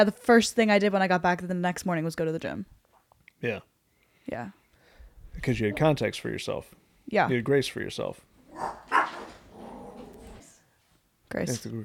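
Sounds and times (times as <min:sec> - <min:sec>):
speech: 0:00.0 - 0:02.8, 0:03.4 - 0:03.7, 0:04.3 - 0:04.6, 0:05.4 - 0:08.9, 0:11.3 - 0:11.8
dogs growling: 0:08.4 - 0:10.6
dog barking: 0:08.5 - 0:10.4.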